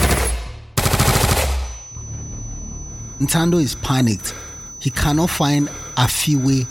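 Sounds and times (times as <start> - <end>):
rapid police gunfire aimed at fleeing protesters: 0.0 - 1.8
speech: 3.2 - 6.7.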